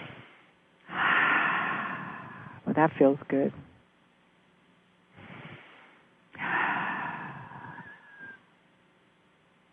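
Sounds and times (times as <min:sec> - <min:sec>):
deep breathing during a guided relaxation exercise: 0:00.0 - 0:02.6, 0:05.1 - 0:08.4
speech: 0:02.8 - 0:03.7.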